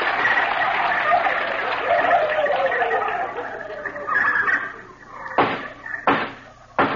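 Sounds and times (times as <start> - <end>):
laughter: 0.1 - 4.6
sharp knocks: 5.4 - 6.9.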